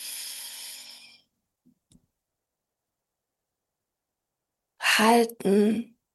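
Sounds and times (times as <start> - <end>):
deep inhale through the nose during a guided breathing exercise: 0.0 - 1.2
speech: 5.0 - 5.9.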